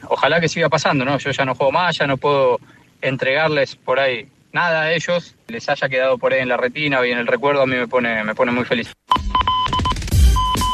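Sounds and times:
speech: 0.2 - 9.0
radio goal alert short electronic beeps for a football goal: 9.1 - 10.7.

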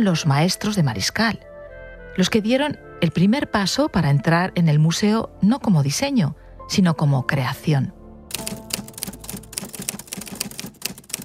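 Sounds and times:
speech: 0.0 - 1.5, 2.2 - 8.0
typewriter keys clacking: 8.3 - 11.2.

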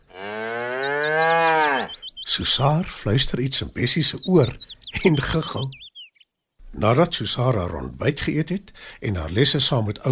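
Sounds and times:
faint bird chirps: 0.0 - 6.6
cow mooing: 0.1 - 2.0
speech: 2.4 - 5.8, 6.8 - 10.1.

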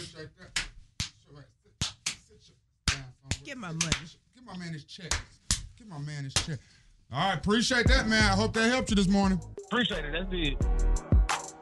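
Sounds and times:
speech: 0.2 - 0.5, 3.4 - 11.0
sharp loud slaps: 0.6 - 1.2, 1.8 - 2.3, 2.9 - 4.2, 5.0 - 6.6.

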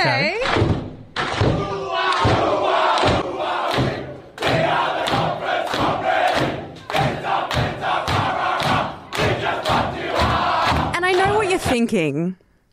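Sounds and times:
speech: 0.0 - 0.8, 11.7 - 12.4
rhythmic thumping beats: 0.5 - 11.9
large crowd yelling a made-up team chant in unison: 1.5 - 11.4.

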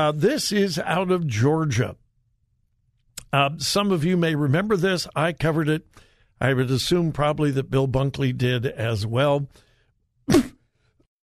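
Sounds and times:
speech: 0.0 - 2.0, 3.3 - 9.7, 10.3 - 10.5
single sharp cough: 10.3 - 10.6.

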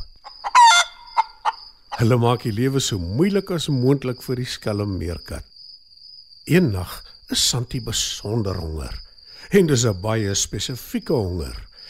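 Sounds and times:
hens cackling and clucking: 0.0 - 2.1
speech: 2.0 - 5.5, 6.4 - 11.7.

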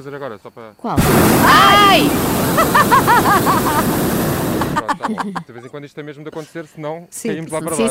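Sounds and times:
speech: 0.0 - 4.2, 4.8 - 7.9
hot air balloon burner firing during a flight over Castelo Branco: 1.0 - 4.9
laughter: 2.3 - 5.6.

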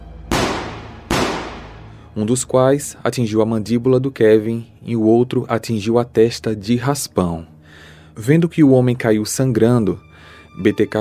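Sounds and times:
loud sharp gunshots fired: 0.3 - 1.9
speech: 2.2 - 7.5, 8.2 - 10.9.

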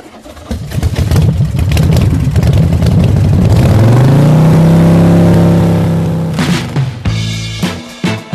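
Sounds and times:
motorcycle engine revving: 0.0 - 7.6.

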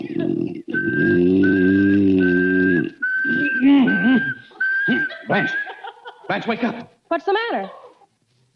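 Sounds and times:
laughter: 0.0 - 6.8
person whistling one steady pitch: 0.7 - 5.7
loud low buzzing drone: 0.8 - 5.0
speech: 6.4 - 7.8.

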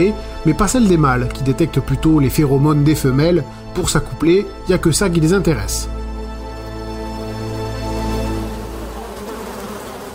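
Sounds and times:
speech: 0.0 - 6.0
mosquito buzzing: 6.1 - 10.1.

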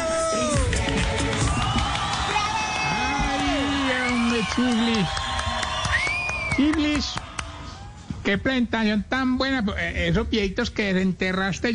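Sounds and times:
crowd shouting: 0.0 - 6.1
crowd cheering and whooping: 0.0 - 8.2
applause: 0.6 - 7.8
whistles: 2.8 - 5.0, 5.6 - 6.8
speech: 6.6 - 7.3, 8.2 - 11.7.

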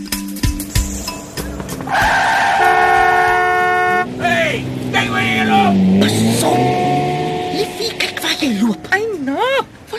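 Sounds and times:
truck tyres screeching in a long wavering skid: 0.6 - 7.5
truck horn blaring: 1.4 - 9.7
person shouting: 2.6 - 6.2.

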